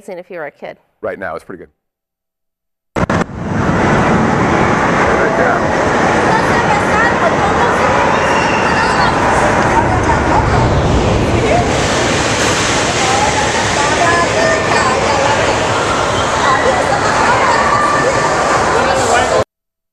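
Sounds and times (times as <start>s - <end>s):
speech: 0.0s - 1.8s
wind buffeting the microphone: 3.0s - 17.5s
water flume ride splashing with churning water: 3.0s - 19.4s
crowd voices murmuring: 5.1s - 19.4s.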